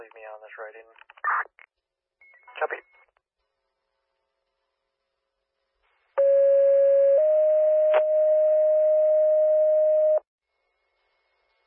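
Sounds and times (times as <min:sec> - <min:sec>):
speech: 0:00.4 - 0:01.8, 0:02.6 - 0:03.0
fire dispatch alert tones: 0:06.2 - 0:10.2.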